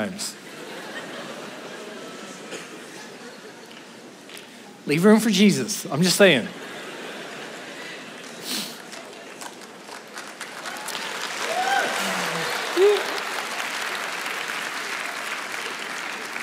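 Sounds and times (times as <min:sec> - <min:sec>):
speech: 0:00.0 - 0:00.5, 0:04.9 - 0:06.7
laughter: 0:00.4 - 0:04.0, 0:06.5 - 0:09.4, 0:11.7 - 0:13.5
audience applause: 0:07.1 - 0:16.4.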